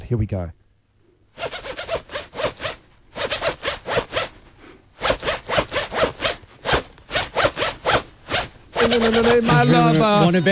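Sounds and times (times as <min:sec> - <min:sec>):
speech: 0:00.1 - 0:00.6, 0:08.9 - 0:10.4
zipper pulled up and down rhythmically like a tune: 0:01.4 - 0:04.4, 0:05.0 - 0:10.3.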